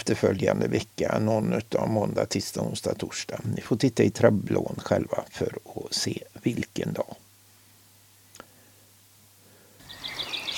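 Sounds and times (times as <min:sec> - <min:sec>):
speech: 0:00.0 - 0:07.2
soft outdoor hiss: 0:00.0 - 0:10.5
birdsong with quick high chirps: 0:09.8 - 0:10.5.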